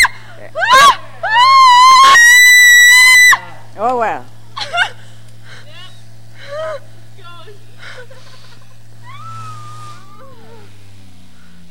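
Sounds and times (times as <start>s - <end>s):
people screaming: 0.0s - 3.5s, 9.0s - 10.7s
faint steady hum: 0.0s - 11.6s.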